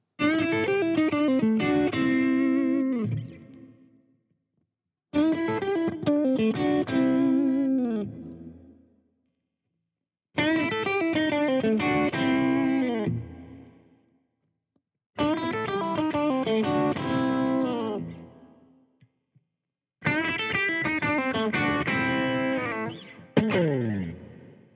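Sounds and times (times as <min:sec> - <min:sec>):
electric guitar through single-coil pickups with Alnico 5 magnets playing overdriven riff: 0:00.2 - 0:03.7, 0:05.2 - 0:08.7, 0:10.4 - 0:13.8, 0:15.2 - 0:18.5, 0:20.0 - 0:24.6.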